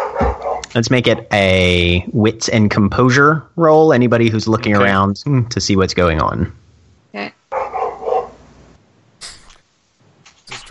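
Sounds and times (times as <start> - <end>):
dog barking: 0.0 - 0.7, 7.5 - 8.4
speech: 0.7 - 7.4.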